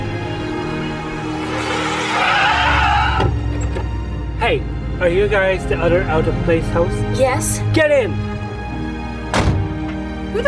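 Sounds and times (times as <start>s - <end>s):
car engine rumbling: 0.0s - 10.4s
car tires squealing and skidding as the vehicle pulls up: 1.0s - 3.7s
speech: 4.5s - 8.3s.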